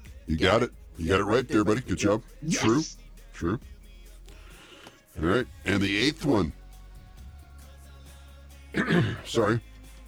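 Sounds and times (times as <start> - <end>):
speech: 0.3 - 3.7, 5.2 - 6.6, 8.7 - 9.7
person coughing, rough and throaty: 8.8 - 9.4.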